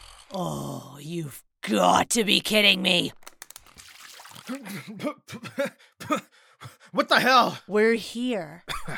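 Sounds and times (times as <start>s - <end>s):
speech: 0.3s - 3.2s, 4.5s - 8.9s
water splashed on face of person napping in car back seat: 3.4s - 4.8s
spluttering cough: 4.5s - 6.3s, 8.7s - 8.9s
gasping voiced breaths: 5.6s - 7.0s.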